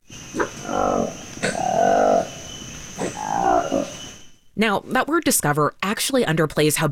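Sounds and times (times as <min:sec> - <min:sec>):
newly discovered orange-lipped long-tailed monkey species giving frog-like croaking calls: 0:00.2 - 0:04.2
speech: 0:04.6 - 0:06.9.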